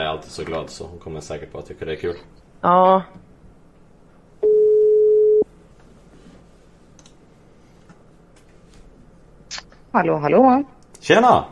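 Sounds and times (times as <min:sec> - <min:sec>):
speech: 0:00.2 - 0:03.3, 0:10.0 - 0:11.4
telephone ringback tone while calling: 0:04.4 - 0:05.4.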